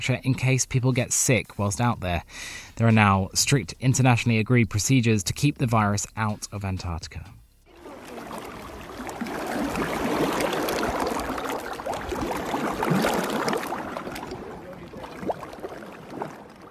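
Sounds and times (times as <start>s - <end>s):
speech: 0.0s - 7.4s
oily water waves washing against a shoreline: 7.7s - 16.6s
sharper water splashes: 7.7s - 16.6s.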